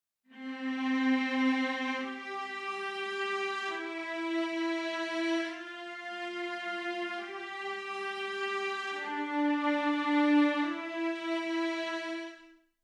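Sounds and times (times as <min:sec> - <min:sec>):
violas: 0:00.3 - 0:12.4.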